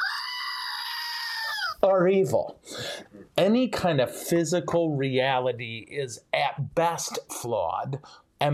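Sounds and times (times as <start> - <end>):
goat screaming: 0.0 - 1.8
speech: 1.8 - 8.5.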